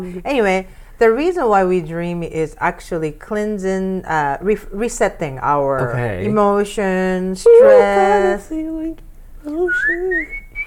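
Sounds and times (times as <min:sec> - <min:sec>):
speech: 0:00.0 - 0:10.4
person whistling: 0:07.5 - 0:08.0, 0:09.7 - 0:10.6.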